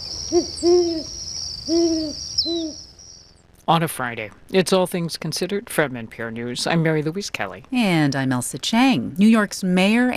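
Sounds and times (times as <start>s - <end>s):
Great Horned Owl hooting: 0.0s - 3.2s
high-pitched insect buzz: 0.0s - 3.3s
speech: 0.3s - 1.1s, 3.7s - 10.1s.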